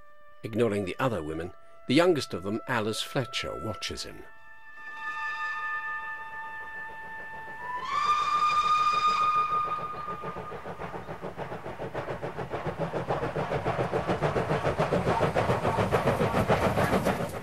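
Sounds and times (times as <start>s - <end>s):
speech: 0.4s - 4.4s
steam train whistle: 4.6s - 10.8s
steam train engine chuffing on the rails: 6.3s - 17.4s.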